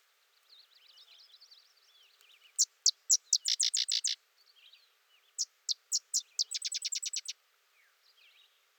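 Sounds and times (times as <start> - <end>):
faint bird twitters: 2.6 - 4.2, 5.7 - 7.4
sedge wren singing dry chips and rattling series: 2.6 - 4.2, 5.7 - 7.3.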